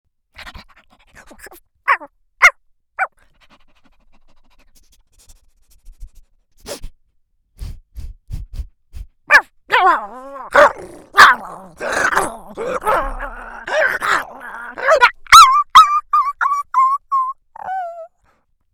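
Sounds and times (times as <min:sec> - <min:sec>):
Chihuahua vocal extremes: 0:01.2 - 0:02.1, 0:09.3 - 0:18.1.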